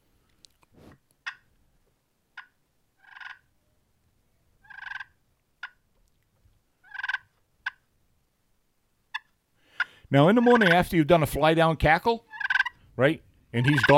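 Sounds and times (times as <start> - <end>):
turkey clucks: 4.6 - 5.8, 6.8 - 7.8, 9.1 - 10.9, 12.3 - 12.8, 13.6 - 13.9
speech: 10.1 - 12.3, 13.0 - 13.9.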